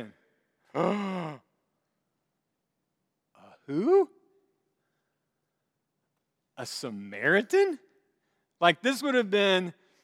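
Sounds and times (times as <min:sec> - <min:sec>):
speech: 0:00.0 - 0:01.4, 0:03.7 - 0:04.2, 0:06.6 - 0:07.8, 0:08.6 - 0:09.8
theatrical groan-like vocal gasp: 0:00.7 - 0:01.5.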